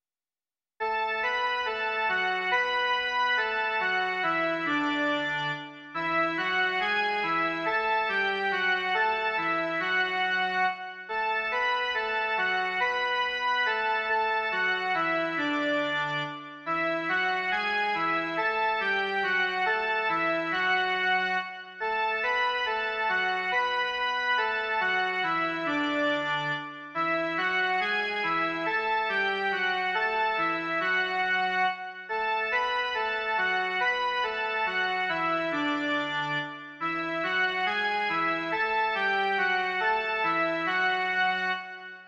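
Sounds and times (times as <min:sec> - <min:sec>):
Christmas hymn melody, male version: 0:01.0 - 0:42.0.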